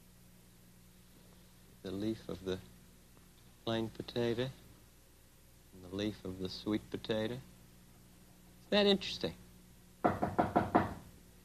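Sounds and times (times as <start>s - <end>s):
speech: 1.9s - 2.7s, 3.6s - 4.6s, 5.8s - 7.5s, 8.7s - 9.4s
knocking on a door by a man arriving with a delivery: 10.0s - 11.1s.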